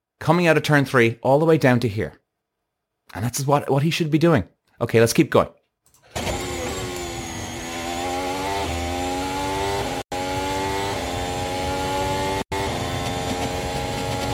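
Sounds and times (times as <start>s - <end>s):
speech: 0.2s - 2.2s, 3.1s - 5.6s
Formula 1 car engine accelerating down a long straight through gear changes: 6.2s - 14.3s.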